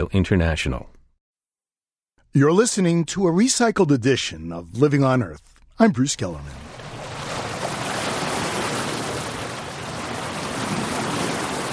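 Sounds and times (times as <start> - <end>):
speech: 0.0 - 1.0, 2.3 - 6.8
sea waves: 6.3 - 11.7.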